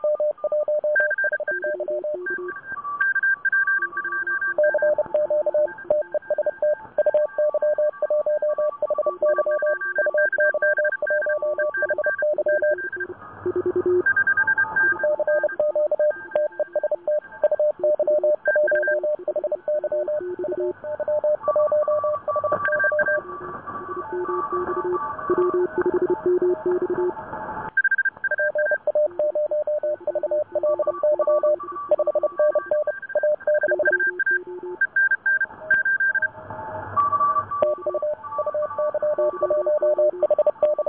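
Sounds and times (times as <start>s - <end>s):
CW morse code radio signal at 7004.8kHz: 0.0s - 36.3s, 37.0s - 40.8s.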